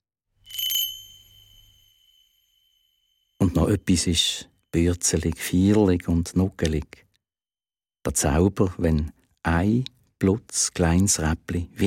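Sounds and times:
single small bell on a jester costume ringing: 0.4s - 3.4s
speech: 3.6s - 7.0s, 8.0s - 11.8s.

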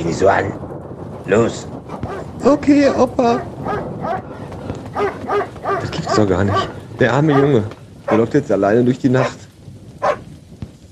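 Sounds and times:
speech: 0.0s - 0.7s, 1.3s - 9.4s
stray dog barking on a cold night: 1.9s - 8.3s, 9.2s - 9.4s, 10.0s - 10.2s.

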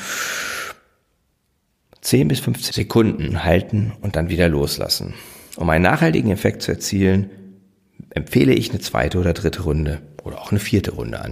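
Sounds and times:
deep airy inhalation during a breathing exercise: 0.0s - 1.0s, 5.1s - 5.6s
speech: 2.0s - 7.4s, 8.2s - 11.3s.

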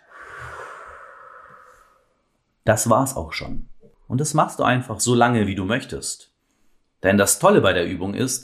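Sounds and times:
slow deliberate breathing in and out: 0.0s - 2.3s
speech: 2.6s - 6.3s, 7.0s - 8.4s.

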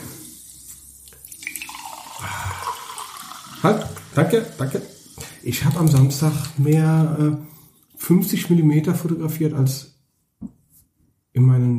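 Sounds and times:
water poured into a glass as a refill: 0.0s - 6.9s
speech: 3.6s - 7.5s, 8.1s - 9.9s, 11.4s - 11.7s.

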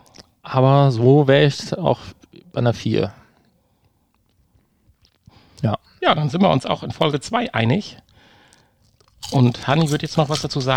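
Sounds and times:
speech: 0.5s - 3.2s, 5.6s - 8.0s, 9.3s - 10.7s
chewing of a crispy seaweed snack: 8.4s - 10.7s.

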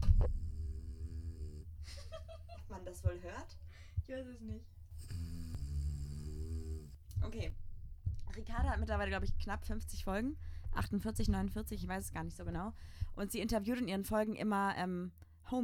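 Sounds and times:
mobile phone vibrating: 0.1s - 1.7s, 4.9s - 7.0s
speech: 2.9s - 5.4s, 7.2s - 7.6s, 8.4s - 15.6s.

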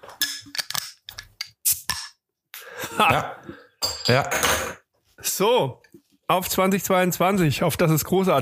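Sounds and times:
bottle opener prying open a beer bottle: 0.2s - 2.2s
speech: 3.0s - 8.3s.

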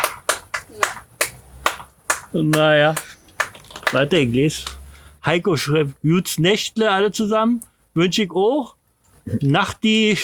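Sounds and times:
hand claps: 0.0s - 4.8s
speech: 2.3s - 3.2s, 3.9s - 10.2s.

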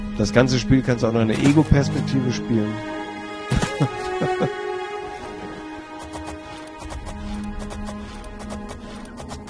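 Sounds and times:
speech: 0.2s - 3.0s
laughter: 3.4s - 5.7s
horse hooves clopping as a rider travels across open country in a video game: 5.2s - 9.4s.

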